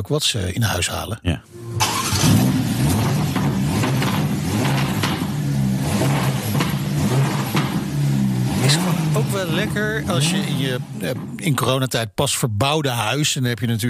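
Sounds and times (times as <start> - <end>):
speech: 0.0 - 2.4, 8.7 - 13.8
Ferrari Roma sports car engine revving: 1.5 - 11.7.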